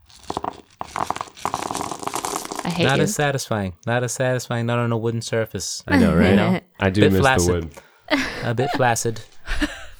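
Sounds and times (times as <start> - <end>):
dice rattling and rustling in a pouch: 0.1 - 2.7
dice rolled for a check in a tabletop role-playing game: 0.1 - 3.1
laughter: 2.7 - 3.2, 5.9 - 9.9
speech: 2.8 - 9.8.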